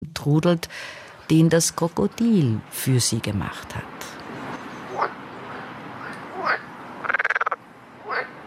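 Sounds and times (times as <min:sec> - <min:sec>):
speech: 0:00.2 - 0:04.2
frog croaking: 0:04.8 - 0:08.4.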